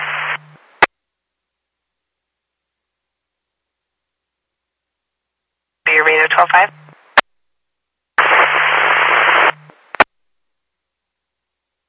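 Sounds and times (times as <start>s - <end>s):
radio static: 0.0s - 0.9s, 5.9s - 7.2s, 8.2s - 10.1s
speech: 6.4s - 6.8s.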